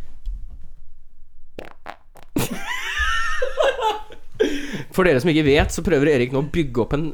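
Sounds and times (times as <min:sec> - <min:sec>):
short low rumbling fart: 0:01.6 - 0:02.6
loud laughter from a couple of people: 0:02.4 - 0:05.0
speech: 0:05.0 - 0:07.1.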